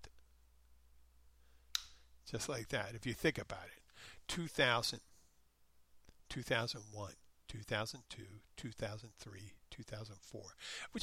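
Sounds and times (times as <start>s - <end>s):
faint hum: 0.0s - 11.0s
single crisp finger snap: 1.7s - 2.1s
speech: 2.3s - 5.1s, 6.3s - 11.0s.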